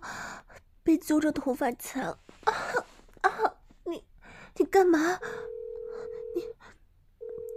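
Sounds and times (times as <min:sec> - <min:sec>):
speech: 0:00.9 - 0:02.6, 0:04.7 - 0:05.4
telephone line tone: 0:05.3 - 0:06.6, 0:07.2 - 0:07.5.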